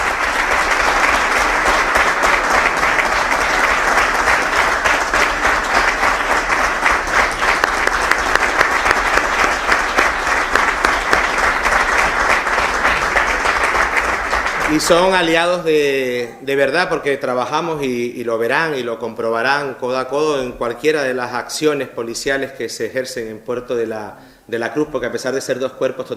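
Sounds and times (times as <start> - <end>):
sizable audience applauding: 0.0 - 16.0
speech: 14.8 - 26.1.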